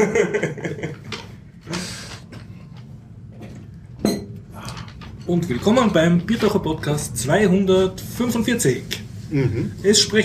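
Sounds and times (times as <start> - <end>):
speech: 0.0 - 0.6, 5.3 - 10.2
glasses clinking in a toast: 4.0 - 4.4.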